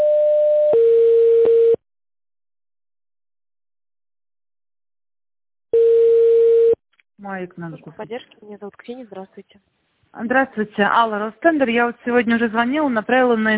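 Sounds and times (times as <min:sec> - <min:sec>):
telephone line tone during call transfer to an operator: 0:00.0 - 0:01.8, 0:05.7 - 0:06.8
speech: 0:07.4 - 0:13.5.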